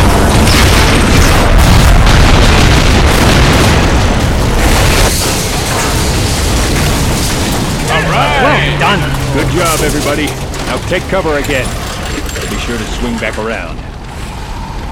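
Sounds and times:
explosions from grenade launchers fired together: 0:00.0 - 0:14.0
speech: 0:10.2 - 0:11.9, 0:12.7 - 0:13.9.

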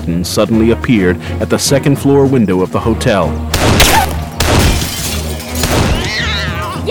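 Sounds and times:
speech: 0:00.0 - 0:04.1
bulky photographic equipment on a tripod crashing to the street: 0:03.6 - 0:06.8.

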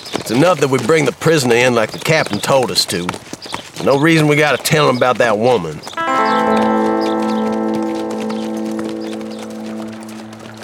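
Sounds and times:
riders' horses' hooves clip-clopping nearing a camp: 0:00.0 - 0:05.4
speech: 0:00.3 - 0:07.0
sustained musical drone: 0:06.0 - 0:10.6.

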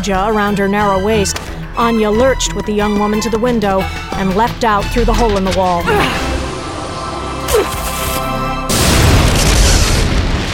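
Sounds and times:
speech: 0:00.0 - 0:06.3
roar of fire and debris from a grenade explosion: 0:06.0 - 0:10.5
grenade explosion boom: 0:08.7 - 0:10.5.

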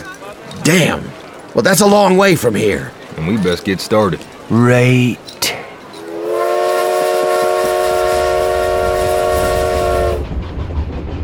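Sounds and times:
speech: 0:00.7 - 0:05.3
moving train rumbling along the tracks: 0:02.3 - 0:11.2
train horn blaring: 0:06.0 - 0:10.3.

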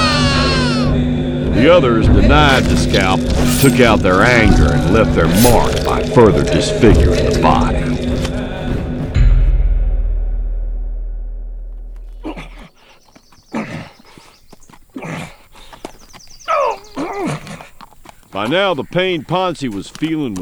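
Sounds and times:
short whinny-like call: 0:00.0 - 0:00.9
deep booming tone: 0:00.0 - 0:12.6
speech: 0:01.6 - 0:07.8, 0:18.5 - 0:20.4
horse hooves clip-clopping at a walking pace: 0:14.1 - 0:20.4.

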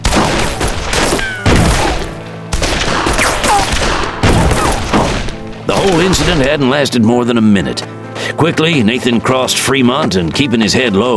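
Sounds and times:
rapid bursts of gunfire in a shootout with reverberation: 0:00.0 - 0:06.6
speech: 0:05.8 - 0:11.1.

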